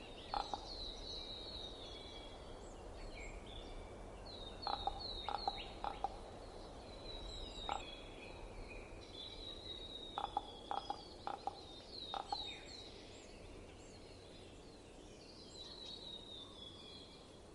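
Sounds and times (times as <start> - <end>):
steady background hiss: 0.0 - 17.5
Common raven knocking calls in winter in Estonia: 0.2 - 0.8, 4.6 - 6.3, 7.6 - 8.0, 10.1 - 12.7.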